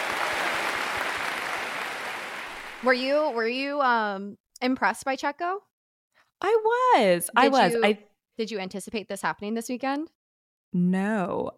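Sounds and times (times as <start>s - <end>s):
crowd applause: 0.0s - 3.4s
speech: 2.8s - 5.7s, 6.4s - 11.5s.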